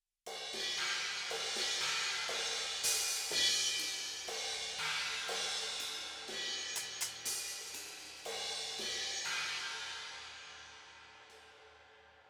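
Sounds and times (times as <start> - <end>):
drum kit cymbal: 0.3 - 12.2.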